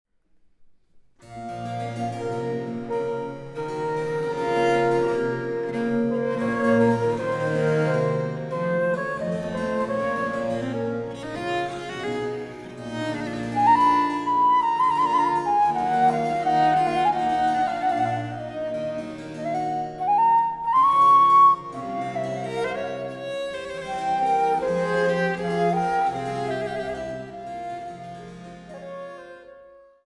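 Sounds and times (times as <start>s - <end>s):
baroque trio for transverse flute, viola da gamba and basso continuo in B minor: 1.4s - 30.0s.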